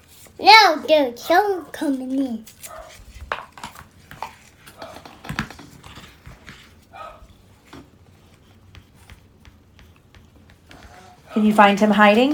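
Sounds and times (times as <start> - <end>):
faint clatter: 0.1 - 12.3
speech: 0.4 - 2.6, 11.4 - 12.3
dog barking: 2.7 - 3.0, 6.9 - 7.3.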